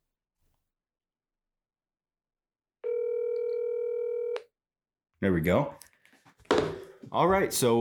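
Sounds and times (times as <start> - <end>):
telephone ringback tone of an outgoing call to a branch in Alberta Canada: 2.8 - 4.4
speech: 5.2 - 5.9, 7.1 - 7.7.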